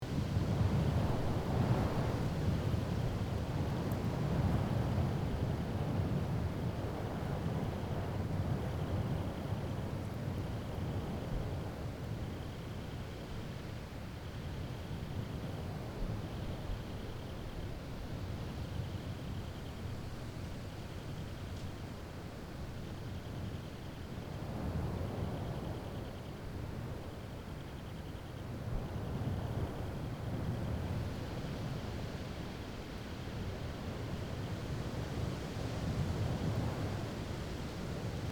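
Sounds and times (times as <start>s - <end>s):
quiet desert night ambience: 0.1s - 38.3s.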